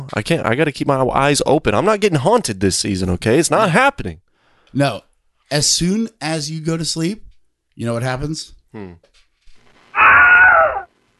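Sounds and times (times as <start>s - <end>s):
speech: 0.1s - 9.2s
Wilhelm scream stock sound effect: 10.0s - 10.9s.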